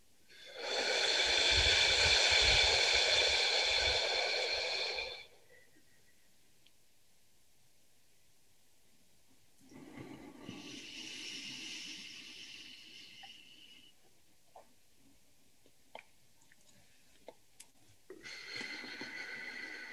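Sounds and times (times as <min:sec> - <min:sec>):
faint breath noise: 0:00.2 - 0:06.4, 0:09.6 - 0:14.2, 0:18.1 - 0:19.9
deep exhale during a breathing exercise: 0:00.3 - 0:05.8, 0:09.7 - 0:14.0, 0:18.2 - 0:19.9.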